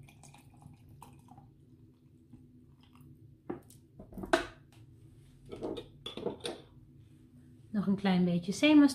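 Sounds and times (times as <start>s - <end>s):
water pouring into a jug: 0.0s - 3.2s
quiet room hum: 0.0s - 8.9s
speech: 7.9s - 8.9s.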